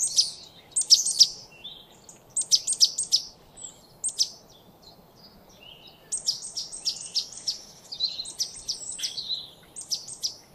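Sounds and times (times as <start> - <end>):
great tit Parus major calls: 0.0 - 1.4, 2.4 - 3.3, 6.1 - 10.5.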